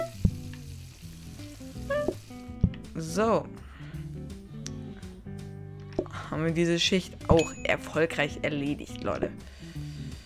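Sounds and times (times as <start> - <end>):
food sizzling on a grill in a restaurant cooking video game: 0.0 - 3.2, 9.3 - 10.2
speech: 3.0 - 3.6, 6.3 - 9.6.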